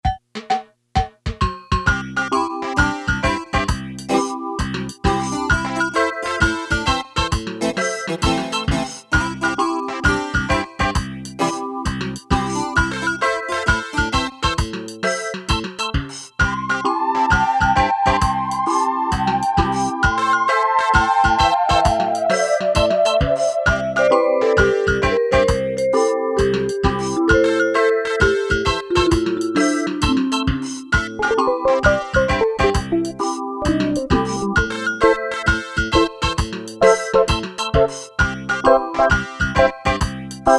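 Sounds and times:
reggae rhythm on a Casio CT-370 keyboard: 1.4s - 40.5s.

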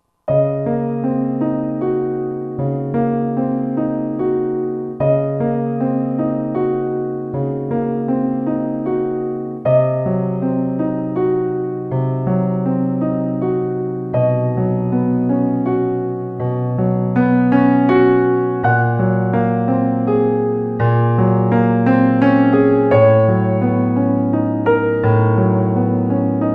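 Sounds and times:
grand piano: 0.2s - 26.5s.

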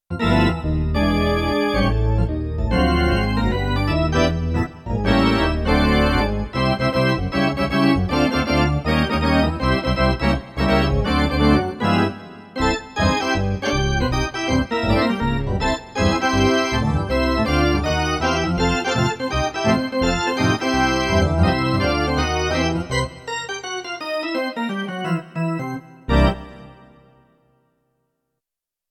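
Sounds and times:
Roland D-70 synthesizer organ: 0.1s - 27.3s.

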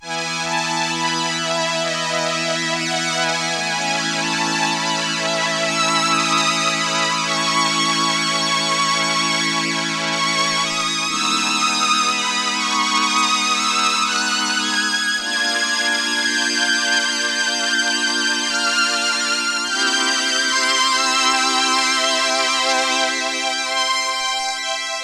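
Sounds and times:
string ensemble synthesizer with slow attack, vibrato and sustain: 0.0s - 25.0s.

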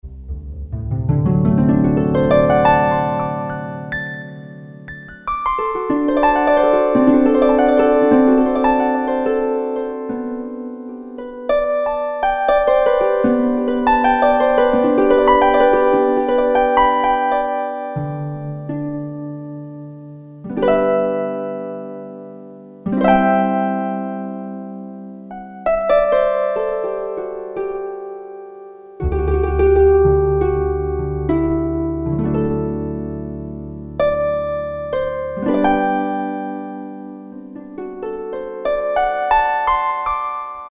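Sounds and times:
synthesizer harp preset: 0.0s - 28.4s, 29.0s - 40.7s.

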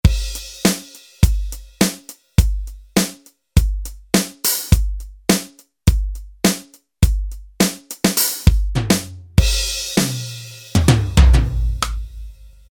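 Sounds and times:
dry drum kit: 0.0s - 12.7s.

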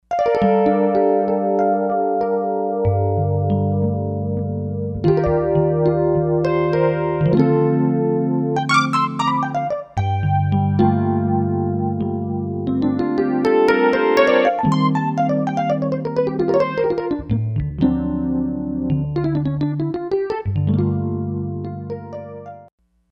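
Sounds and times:
Kawai K5000S synthesizer: 0.2s - 20.1s, 20.7s - 22.7s.

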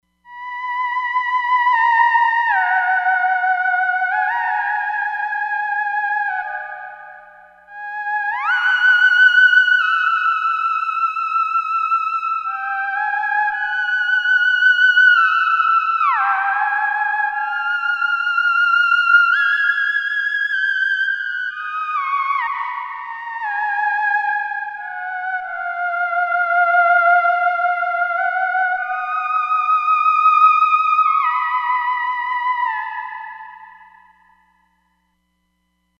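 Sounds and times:
theremin: 0.3s - 34.4s.

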